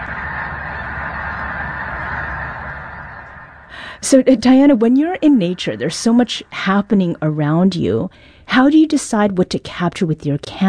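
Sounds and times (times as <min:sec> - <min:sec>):
flock of snow geese honking: 0:00.0 - 0:08.1
speech: 0:04.0 - 0:10.6.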